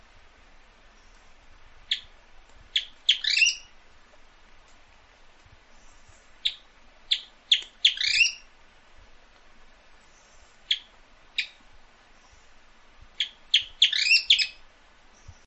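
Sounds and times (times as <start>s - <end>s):
Fruxu bird singing: 2.8s - 3.7s, 6.4s - 8.5s, 10.2s - 11.6s, 13.2s - 14.6s.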